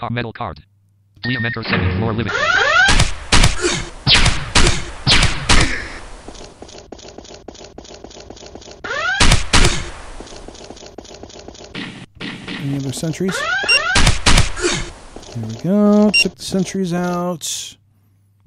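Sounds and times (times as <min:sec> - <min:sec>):
speech: 0:00.0 - 0:02.7, 0:12.6 - 0:13.6, 0:15.4 - 0:17.8
pistol gunfire in a video game: 0:02.3 - 0:06.2, 0:08.8 - 0:10.5, 0:11.7 - 0:15.1.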